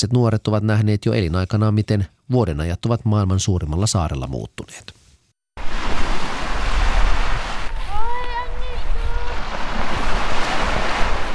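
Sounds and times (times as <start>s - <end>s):
speech: 0.0s - 5.0s
gentle waves washing against a harbor shore: 5.6s - 11.3s.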